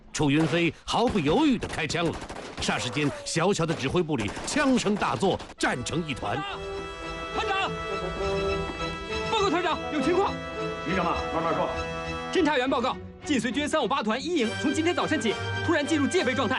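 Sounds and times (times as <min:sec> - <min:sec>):
man talking: 0:00.1 - 0:06.6, 0:09.2 - 0:16.5
bursts of gunfire inside a small command post: 0:00.4 - 0:05.6
sustained musical tone: 0:05.9 - 0:13.2.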